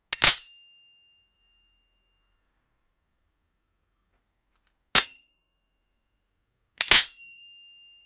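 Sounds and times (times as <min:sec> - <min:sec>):
sharp metallic chink of a gun: 0:00.1 - 0:00.9, 0:05.0 - 0:05.4, 0:06.8 - 0:08.0.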